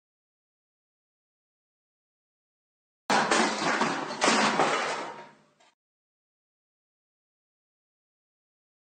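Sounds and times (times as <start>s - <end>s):
loud crash: 3.1s - 5.4s.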